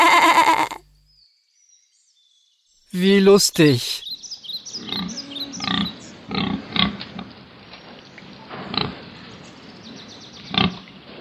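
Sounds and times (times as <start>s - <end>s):
pig oinking and grunting: 0.0s - 0.8s, 4.8s - 7.3s, 10.5s - 10.8s
sheep bleating: 0.0s - 0.8s
speech: 2.9s - 4.1s.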